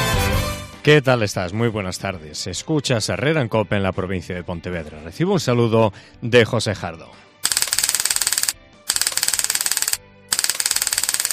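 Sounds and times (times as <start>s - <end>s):
speech: 0.8s - 7.3s
taser stun gun firing an electric discharge: 7.5s - 11.3s.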